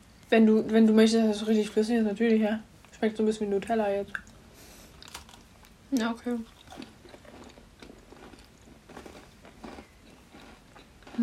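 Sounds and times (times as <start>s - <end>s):
speech: 0.3s - 4.3s, 5.9s - 6.9s
biting and chewing a warmed chocolate cookie: 4.9s - 11.2s.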